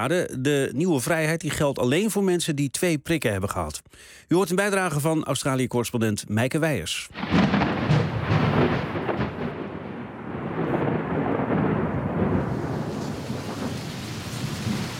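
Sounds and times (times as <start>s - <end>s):
speech: 0.0s - 8.0s
thunder rumbling in Sydney: 7.1s - 14.9s
rain falling in Sydney: 7.2s - 14.9s.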